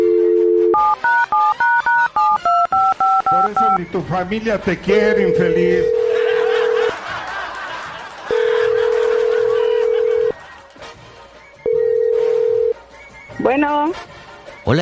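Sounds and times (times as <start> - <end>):
telephone line tone: 0.0 - 3.8, 5.0 - 6.9, 8.3 - 10.4, 11.7 - 12.8
speech: 3.5 - 6.0, 13.4 - 14.8
laughter: 5.9 - 10.7.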